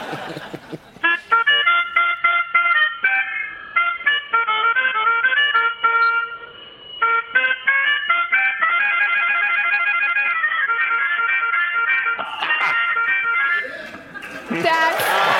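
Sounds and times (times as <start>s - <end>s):
laughter: 0.0s - 1.8s, 12.2s - 15.3s
speech: 0.1s - 0.6s
melodica playing a lively reedy melody: 0.1s - 14.2s.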